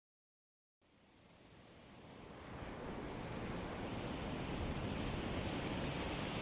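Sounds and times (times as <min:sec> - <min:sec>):
ocean surf rushing at the shoreline: 0:02.2 - 0:06.4.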